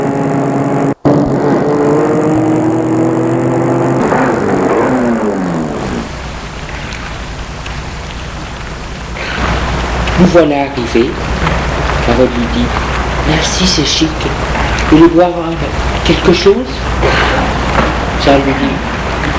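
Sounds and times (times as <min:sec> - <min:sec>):
car engine humming: 0:00.0 - 0:19.3
soft rain-like hiss of noise: 0:04.8 - 0:19.3
speech: 0:10.2 - 0:11.4, 0:12.1 - 0:16.9, 0:18.2 - 0:18.9.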